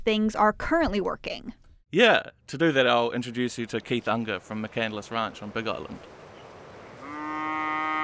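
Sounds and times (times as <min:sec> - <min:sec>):
speech: 0:00.1 - 0:06.2
cow mooing on a ranch: 0:07.0 - 0:08.0.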